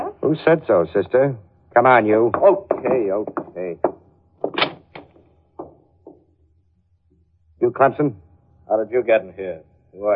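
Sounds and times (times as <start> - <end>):
speech: 0.2 - 3.9, 7.7 - 10.1
attorney's office wooden door knocks and thumps while opened: 2.3 - 6.2.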